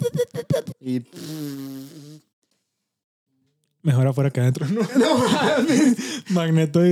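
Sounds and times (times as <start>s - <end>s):
speech: 0.9s - 2.0s, 3.8s - 6.9s
fart: 1.1s - 2.3s
laughter: 4.6s - 6.6s.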